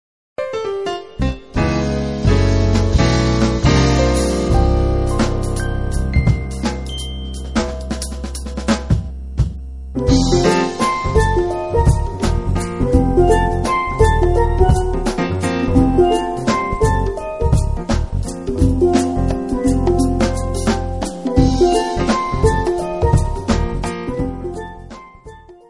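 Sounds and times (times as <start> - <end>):
blues music: 0.4 - 25.6.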